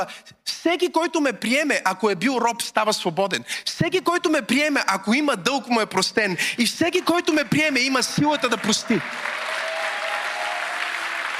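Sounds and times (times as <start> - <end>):
speech: 0.0 - 9.4
audience applause during a sermon in church: 7.3 - 11.3.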